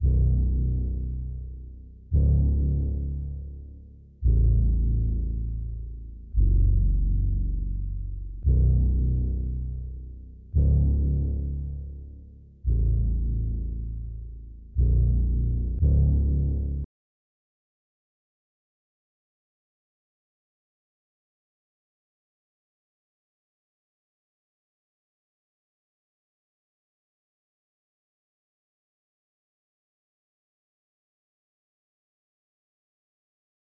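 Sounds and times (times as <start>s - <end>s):
bass loop in F sharp minor: 0.0s - 16.9s.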